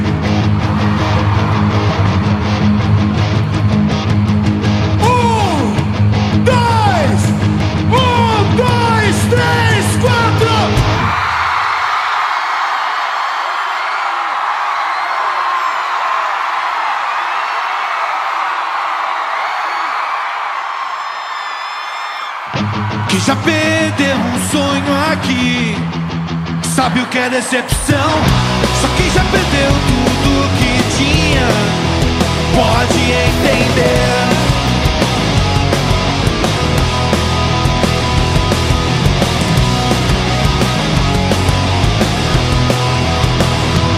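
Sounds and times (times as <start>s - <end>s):
loud live music from a band: 0.0s - 12.0s, 22.4s - 43.9s
large concert crowd shouting and cheering: 0.0s - 43.9s
speech: 23.2s - 26.2s, 26.8s - 31.8s, 32.6s - 34.3s.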